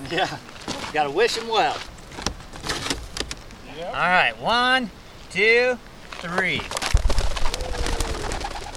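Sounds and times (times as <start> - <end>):
speech: 0.1 - 1.9, 3.8 - 6.8
pigeons released from a cage taking off with rapid wing flutters: 6.7 - 8.7
pigeons cooing: 7.1 - 8.7.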